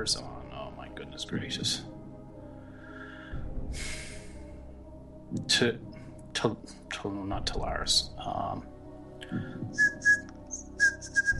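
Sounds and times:
speech: 0.0s - 0.3s, 1.2s - 1.9s, 3.7s - 4.0s, 5.3s - 8.7s, 9.3s - 10.2s
person whistling: 9.7s - 11.3s.

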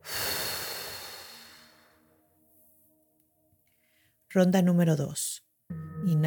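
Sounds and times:
person exhaling slowly during a breathing exercise: 0.0s - 2.0s
speech: 4.4s - 6.2s.

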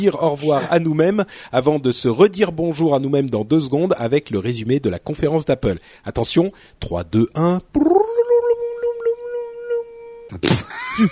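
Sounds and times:
speech: 0.0s - 8.0s, 10.3s - 11.1s
voice imitating a time-travel sound effect: 7.4s - 10.6s.

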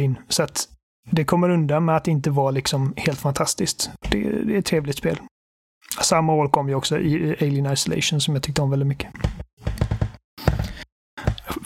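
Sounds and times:
speech: 0.0s - 9.9s
wooden kitchen chair creaking: 9.2s - 11.6s.

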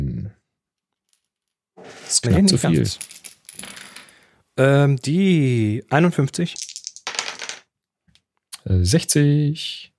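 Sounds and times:
dice clattering across a hard table: 1.0s - 1.6s, 2.7s - 4.2s, 6.5s - 7.7s
speech: 2.1s - 3.2s, 4.6s - 6.7s, 8.7s - 9.9s.

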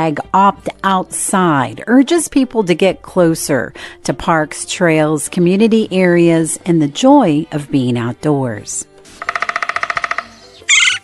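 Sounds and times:
speech: 0.0s - 9.4s
woodpecker giving a fast series of sharp calling notes: 9.1s - 11.0s
loud harsh woodpecker squawk: 9.2s - 11.0s.

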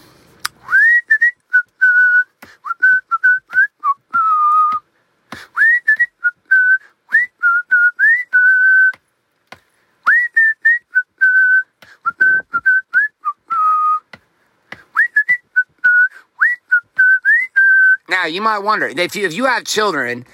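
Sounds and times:
person whistling a lively tune while driving a child to school: 0.6s - 4.8s, 5.4s - 9.0s, 10.0s - 14.1s, 14.8s - 18.1s
speech: 18.2s - 20.3s.

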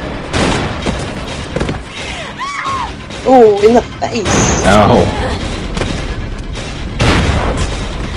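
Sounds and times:
gunshot in a video game: 0.3s - 1.3s, 7.0s - 8.0s
speech: 3.3s - 5.3s.

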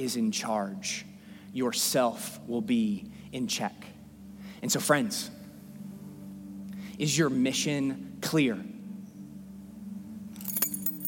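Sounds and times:
speech: 0.0s - 4.0s, 4.6s - 5.4s, 7.0s - 8.7s
set of keys jingling: 10.4s - 11.0s.

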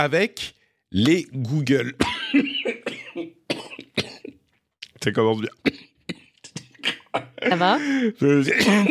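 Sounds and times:
speech: 0.0s - 3.4s, 5.0s - 5.8s, 7.1s - 8.8s
harsh raspy coughing fit: 1.9s - 4.4s, 5.6s - 7.6s, 8.5s - 8.8s.

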